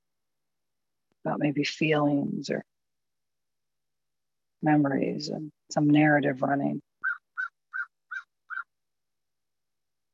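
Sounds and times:
speech: 1.2s - 2.7s, 4.6s - 6.8s
bird calling outside with harsh raspy notes: 7.0s - 8.8s.

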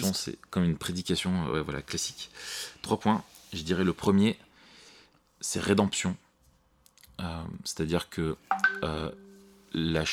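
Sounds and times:
speech: 0.1s - 4.5s, 5.4s - 6.2s, 7.2s - 10.1s
phone message notification tonal blips: 8.5s - 9.5s.

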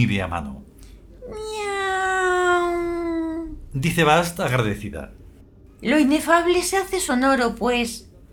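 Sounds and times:
speech: 0.0s - 0.7s, 3.7s - 5.2s, 5.8s - 8.1s
female cat meowing: 1.2s - 3.6s.

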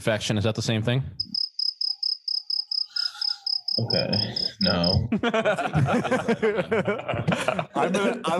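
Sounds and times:
speech: 0.0s - 1.3s, 3.8s - 8.3s
cricket chirping: 1.2s - 5.1s
laughter: 3.0s - 8.3s.

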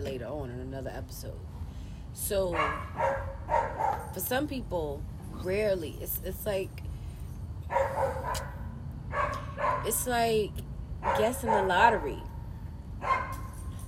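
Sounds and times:
speech: 0.2s - 6.9s, 9.8s - 12.3s
dog barking and yipping: 2.5s - 4.2s, 7.7s - 10.0s, 11.0s - 12.1s, 13.0s - 13.8s.

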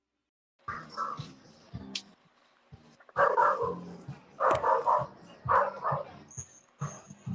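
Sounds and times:
pack of dogs barking and yelping: 0.7s - 1.3s, 3.1s - 7.2s.

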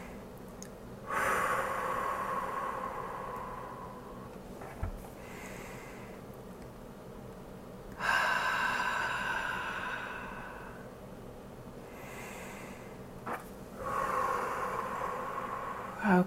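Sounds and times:
deep breaths in through nose, out through mouth: 1.0s - 4.4s, 5.0s - 6.3s, 8.0s - 11.0s, 11.8s - 16.1s.

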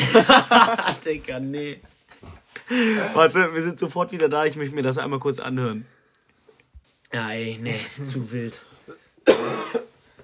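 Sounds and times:
laughter: 0.0s - 1.0s
speech: 0.2s - 6.0s, 7.1s - 9.8s
harsh cough: 8.9s - 10.0s.

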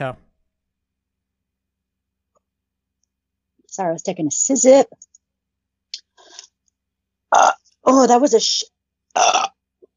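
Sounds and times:
speech: 0.0s - 0.2s, 3.8s - 5.1s, 7.3s - 9.5s
short throaty burp: 7.3s - 7.7s, 9.1s - 9.6s.

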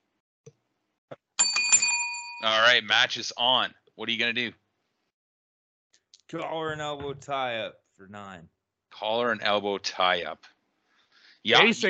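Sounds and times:
wrestling ring bell clanging: 1.4s - 2.6s
speech: 2.4s - 4.6s, 6.3s - 10.6s, 11.4s - 11.8s.

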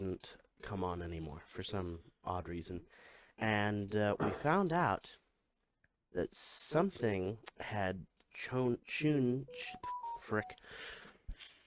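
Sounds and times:
speech: 0.0s - 5.2s, 6.1s - 11.6s
mobile phone notification electronic beeps: 9.5s - 10.6s.

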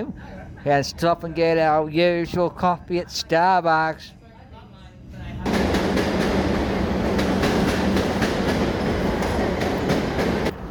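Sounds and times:
speech: 0.0s - 4.2s
low train rumble: 0.0s - 10.7s
train wheels clacking on rails: 5.5s - 10.6s.

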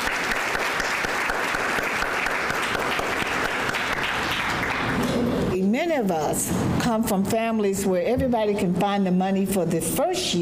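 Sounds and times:
large audience applauding: 0.0s - 5.4s
speech: 5.9s - 10.4s.

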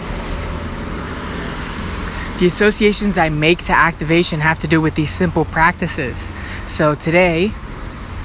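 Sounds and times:
road traffic of cars passing: 0.0s - 8.2s
speech: 2.4s - 7.7s.

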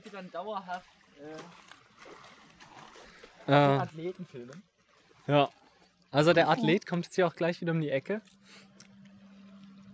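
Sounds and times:
bicycle riding through deep water with the front tire submerged, splashing and sloshing: 0.0s - 6.6s
speech: 0.1s - 2.3s, 3.4s - 4.7s, 5.3s - 8.7s.

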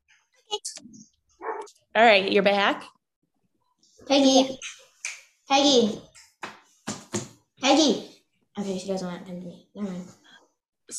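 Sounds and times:
dog barking: 1.4s - 1.7s
speech: 2.0s - 2.9s, 4.1s - 4.8s, 5.5s - 6.1s, 7.7s - 10.2s.

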